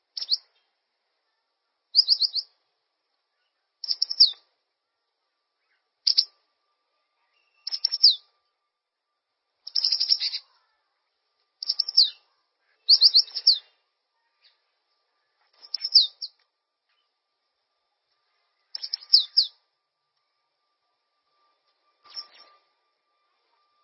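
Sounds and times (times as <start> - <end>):
bird song of fast high chirps and trills: 0.1 - 0.8, 1.9 - 2.6, 3.3 - 4.5, 5.5 - 8.4, 9.6 - 10.8, 11.6 - 17.2, 18.2 - 19.7, 21.2 - 23.8.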